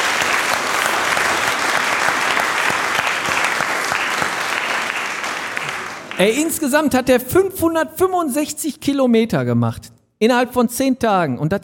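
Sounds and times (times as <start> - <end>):
large crowd applauding: 0.0 - 6.5
speech: 6.2 - 11.6.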